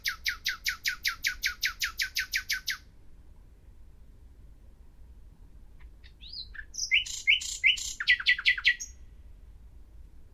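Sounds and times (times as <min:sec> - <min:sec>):
common nightingale Luscinia megarhynchos song: 0:00.0 - 0:03.0, 0:05.5 - 0:10.3.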